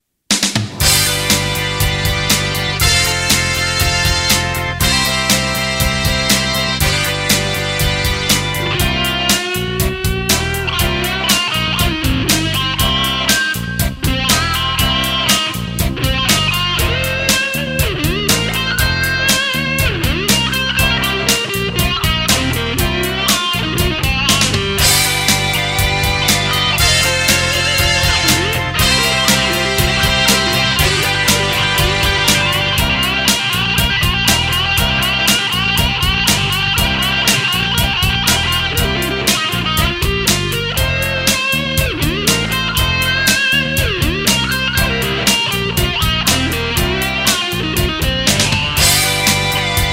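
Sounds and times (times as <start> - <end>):
blues lead guitar in C: 0.7 - 49.9.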